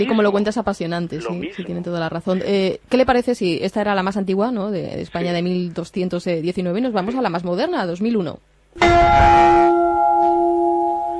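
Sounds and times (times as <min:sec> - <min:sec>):
speech: 0:00.0 - 0:10.0
modern church bell ringing: 0:08.8 - 0:11.1.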